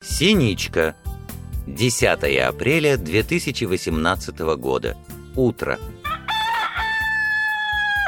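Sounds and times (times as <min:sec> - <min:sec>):
speech: 0:00.2 - 0:01.0, 0:01.7 - 0:05.9
rooster crowing as a morning wake-up call: 0:06.0 - 0:08.0.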